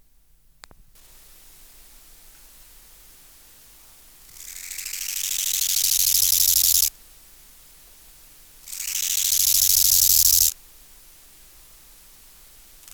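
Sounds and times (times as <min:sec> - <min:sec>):
Chorthippus biguttulus euhedickei bow-winged grasshopper stridulating: 0:04.2 - 0:06.9, 0:08.6 - 0:10.6.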